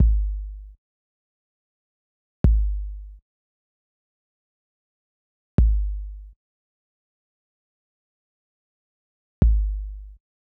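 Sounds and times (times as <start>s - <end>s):
hip hop kick drum: 0.0s - 0.7s, 2.5s - 3.2s, 5.6s - 6.3s, 9.4s - 10.2s.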